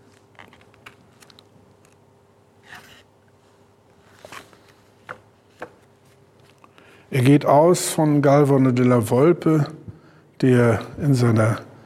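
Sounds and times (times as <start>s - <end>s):
book pages leafed through in search of a passage: 0.0s - 2.0s, 2.6s - 3.1s, 4.0s - 6.8s
speech: 7.1s - 9.8s, 10.4s - 11.7s.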